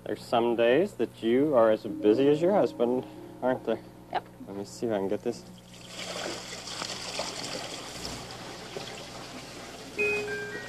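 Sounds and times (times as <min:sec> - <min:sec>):
speech: 0:00.1 - 0:05.6
water trickling and pouring: 0:05.7 - 0:10.0.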